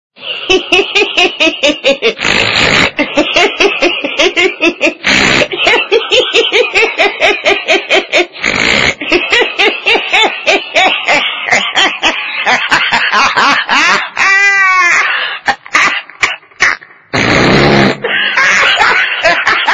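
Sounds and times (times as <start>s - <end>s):
monkey laughing jingle: 0.4s - 17.0s, 17.9s - 19.7s.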